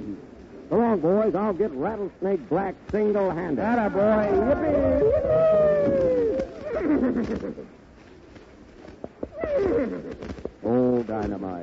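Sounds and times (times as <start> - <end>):
speech: 0.7 - 6.3, 6.9 - 7.8, 11.1 - 11.6
scuffling: 2.8 - 11.6
horse neighing: 3.8 - 7.7, 9.2 - 10.4.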